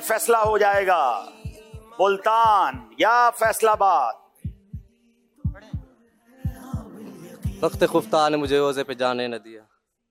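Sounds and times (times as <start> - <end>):
speech: 0.1 - 1.4, 2.0 - 4.2, 7.6 - 9.6
fast heartbeat sound effect: 0.4 - 7.9.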